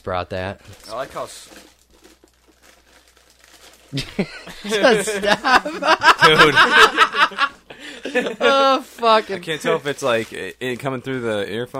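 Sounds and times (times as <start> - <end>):
speech: 0.0 - 1.8, 3.9 - 11.7
low constant hum: 0.0 - 11.7
paper bag crinkling: 0.5 - 4.3, 9.6 - 10.9
laughter: 4.0 - 9.8.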